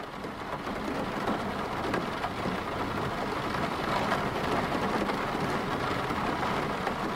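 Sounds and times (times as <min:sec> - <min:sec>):
steady rain falling: 0:00.0 - 0:07.1.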